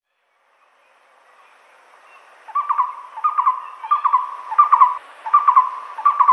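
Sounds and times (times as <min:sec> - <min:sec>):
moustached barbet hooting with knocking accents: 0:02.1 - 0:06.3.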